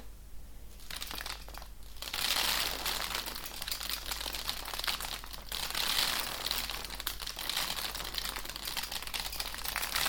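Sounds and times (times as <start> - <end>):
lentils poured from a glass jar over houseplant leaves: 0.8 - 10.0.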